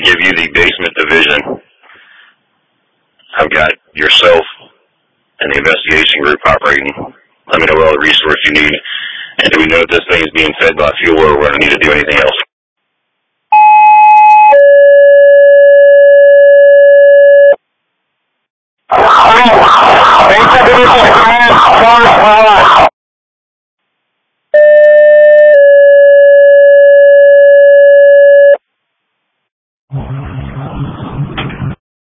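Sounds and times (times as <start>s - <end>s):
harsh garbled crackling radio transmission noise: 0.0s - 1.7s, 5.4s - 12.5s, 18.9s - 22.9s
speech: 1.1s - 1.5s, 3.4s - 4.5s, 5.4s - 12.4s, 18.9s - 22.9s
loud steady electronic alarm tone: 13.5s - 17.6s, 24.6s - 28.6s.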